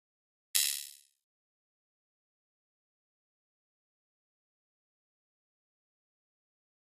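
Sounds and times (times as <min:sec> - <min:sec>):
thin electric spring reverb: 0:00.6 - 0:01.0.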